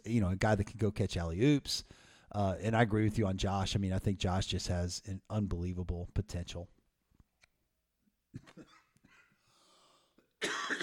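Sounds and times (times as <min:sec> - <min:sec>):
speech: 0:00.0 - 0:06.8
person clearing throat: 0:08.4 - 0:09.4, 0:10.4 - 0:10.8
person coughing: 0:08.4 - 0:09.4, 0:10.4 - 0:10.8.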